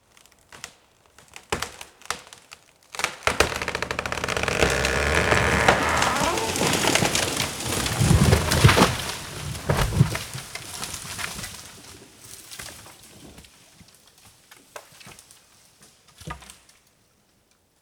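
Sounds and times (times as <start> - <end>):
tree falling: 3.0 - 10.4.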